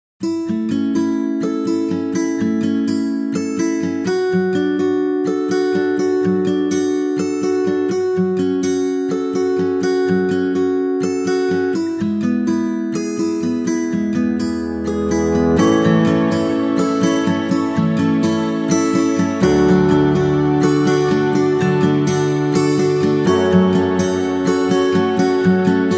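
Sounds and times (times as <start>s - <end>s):
guitar music for a commercial: 0.2s - 25.9s.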